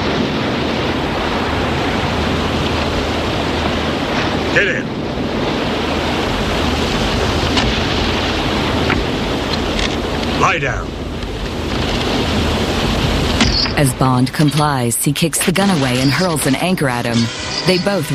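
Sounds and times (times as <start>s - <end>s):
surf breaking on a sandy beach: 0.0s - 14.7s
wind buffeting: 0.0s - 18.1s
man barking short commands: 4.6s - 4.9s, 10.4s - 10.8s
speech: 4.6s - 5.0s, 10.4s - 11.0s, 13.8s - 18.1s.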